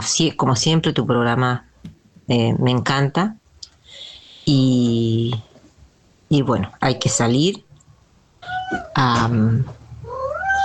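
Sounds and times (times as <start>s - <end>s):
speech: 0.0s - 1.7s, 2.3s - 3.4s, 4.5s - 5.5s, 6.3s - 7.6s, 8.7s - 9.8s
cat meowing: 10.0s - 10.6s.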